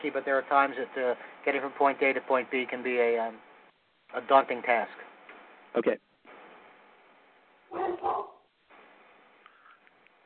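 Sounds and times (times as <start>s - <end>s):
speech: 0.0s - 3.5s, 4.1s - 5.1s, 5.7s - 6.1s
low steady hum: 0.0s - 10.2s
dog barking: 7.7s - 8.5s.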